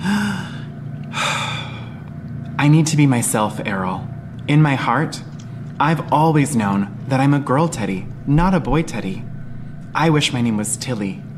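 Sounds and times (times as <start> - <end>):
deep breath: 0.0 - 2.0
speech: 2.6 - 9.3, 10.0 - 11.3.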